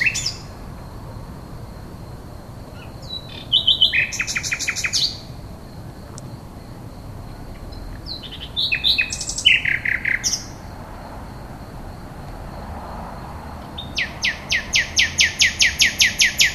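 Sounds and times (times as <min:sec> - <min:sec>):
common nightingale singing rapid loud repeated notes and trills: 0:00.0 - 0:00.6, 0:02.7 - 0:05.4, 0:07.6 - 0:10.7, 0:13.7 - 0:16.5.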